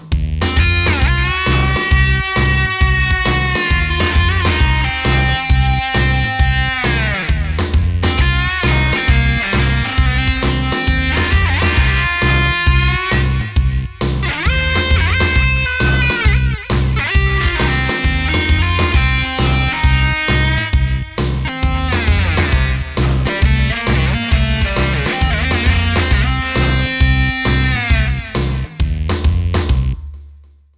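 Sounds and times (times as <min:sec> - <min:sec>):
modern rock music: 0:00.1 - 0:29.9.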